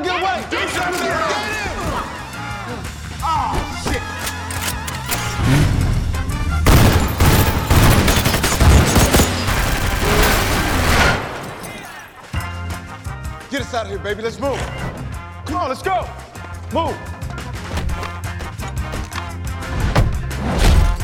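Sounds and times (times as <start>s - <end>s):
driving music track: 0.1s - 21.0s
rapid bursts of gunfire in a film scene: 4.0s - 5.8s, 6.6s - 12.0s
speech: 14.0s - 14.9s, 15.6s - 17.1s.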